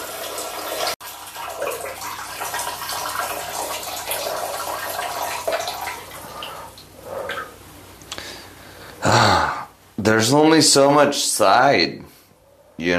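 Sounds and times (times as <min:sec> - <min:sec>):
stream of urine splashing into toilet water: 0:00.0 - 0:07.6
speech: 0:10.0 - 0:12.1, 0:12.8 - 0:12.9.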